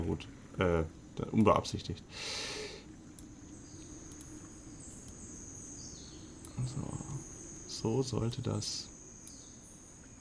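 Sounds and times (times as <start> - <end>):
speech: 0.1 - 2.7, 6.6 - 8.9
faint bird chirps in a forest: 0.2 - 10.2
steady high-pitched insect drone in a forest: 4.7 - 9.9.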